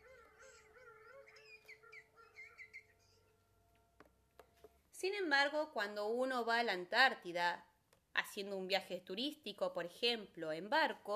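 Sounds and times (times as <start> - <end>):
emperor penguin chicks calling in a creche in Antarctica: 0.3 - 3.0
speech: 5.0 - 7.7, 8.4 - 11.1.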